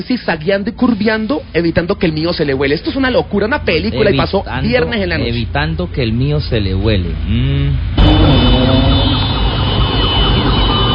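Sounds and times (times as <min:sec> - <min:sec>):
speech: 0:00.0 - 0:09.2
heavy rumble of engine and traffic: 0:00.0 - 0:10.9
ambulance siren on a road: 0:08.0 - 0:10.9.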